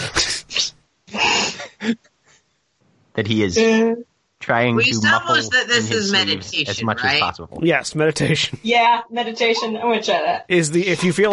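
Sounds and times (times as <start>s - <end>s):
person sneezing: 0.0s - 2.0s
speech: 1.9s - 2.1s, 3.2s - 11.3s
laughter: 4.5s - 8.6s, 10.6s - 11.3s.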